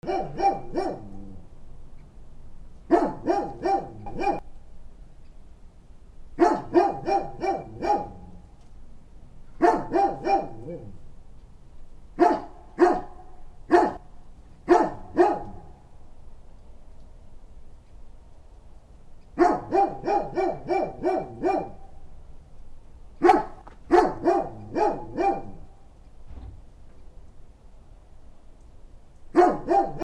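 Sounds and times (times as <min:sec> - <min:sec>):
rustic dog barking: 0:00.0 - 0:01.2, 0:02.9 - 0:04.4, 0:06.4 - 0:08.3, 0:09.6 - 0:10.9, 0:12.2 - 0:14.0, 0:14.7 - 0:15.7, 0:19.4 - 0:21.8, 0:23.2 - 0:25.7, 0:29.3 - 0:30.0.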